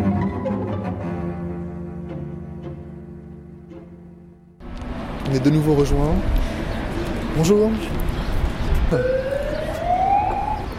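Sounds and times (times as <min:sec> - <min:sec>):
emergency siren wailing at a street protest: 0:00.0 - 0:00.7, 0:08.9 - 0:10.7
crowd noise at a street protest: 0:04.6 - 0:10.7
rumble of traffic: 0:04.6 - 0:10.7
speech: 0:05.3 - 0:06.4, 0:07.4 - 0:08.2, 0:08.9 - 0:09.2.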